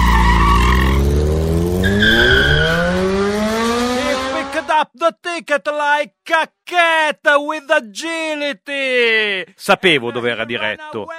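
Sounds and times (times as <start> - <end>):
motorbike tire skid: 0.0 - 4.4
roaring motorbike engine accelerating: 0.0 - 4.6
speech: 5.1 - 11.1.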